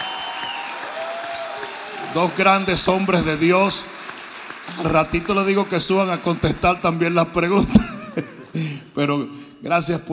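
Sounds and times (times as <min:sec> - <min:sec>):
crowd applause: 0:00.0 - 0:07.4
speech: 0:02.1 - 0:04.0, 0:04.7 - 0:10.1
laughter: 0:07.5 - 0:08.8.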